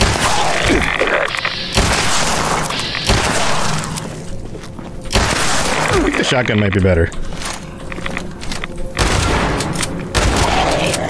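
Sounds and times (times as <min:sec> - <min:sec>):
dense continuous video game noise: 0:00.0 - 0:11.0
pistol gunshots in a video game: 0:01.6 - 0:04.0, 0:05.1 - 0:06.2, 0:09.0 - 0:10.9
speech: 0:06.3 - 0:07.4.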